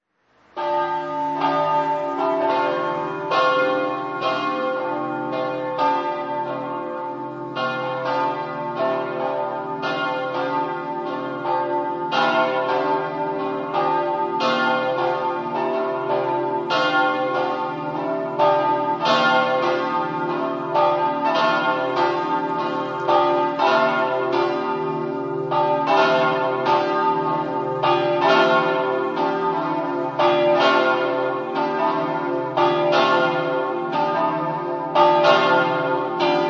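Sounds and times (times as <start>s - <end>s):
bells ringing in Attimis: 0.6s - 36.4s.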